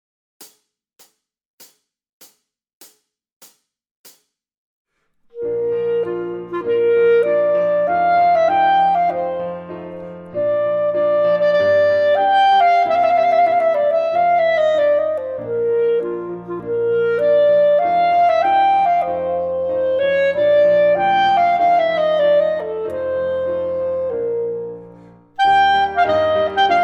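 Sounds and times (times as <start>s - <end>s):
clarinet playing a theme: 5.3s - 26.8s.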